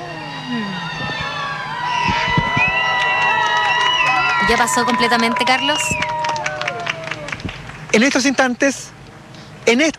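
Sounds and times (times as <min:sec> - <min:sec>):
crowd cheering and calling out: 0:00.0 - 0:08.4
scattered claps: 0:01.7 - 0:08.3
speech: 0:04.5 - 0:06.2, 0:07.9 - 0:09.0, 0:09.7 - 0:09.9.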